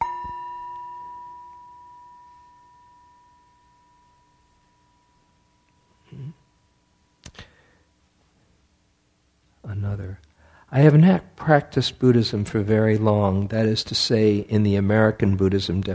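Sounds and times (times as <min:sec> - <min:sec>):
meditation bell ringing: 0:00.0 - 0:06.0
speech: 0:09.8 - 0:15.9.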